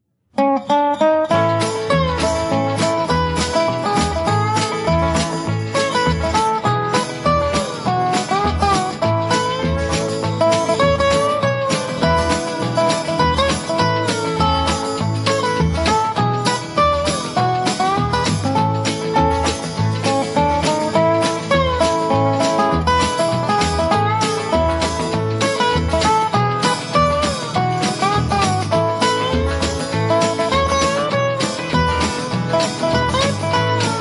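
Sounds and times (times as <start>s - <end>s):
steel guitar chimes in country style: 0.4s - 34.0s.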